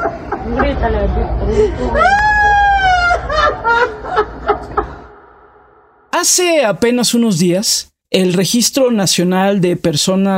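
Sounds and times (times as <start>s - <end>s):
laughter: 0.0s - 5.5s
speech: 0.5s - 2.3s, 6.2s - 10.3s
woman sobbing cries: 1.4s - 5.2s
woman wailing in grief: 1.6s - 4.3s.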